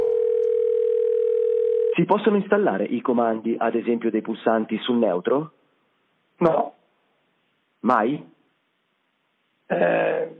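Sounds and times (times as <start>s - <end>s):
telephone dial tone: 0.0s - 2.0s
speech: 2.0s - 5.6s, 6.4s - 6.8s, 7.8s - 8.3s, 9.7s - 10.3s.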